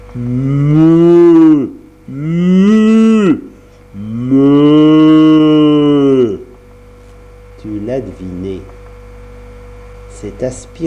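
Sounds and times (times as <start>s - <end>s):
speech: 0.2s - 0.9s, 10.4s - 10.8s
cow lowing after stepping out of water: 0.2s - 6.6s.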